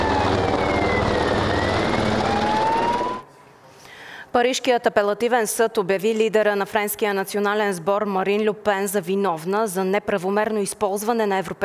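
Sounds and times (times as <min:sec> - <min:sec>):
firefighting helicopter engine and rotor roaring overhead: 0:00.0 - 0:03.2
speech: 0:04.4 - 0:11.6.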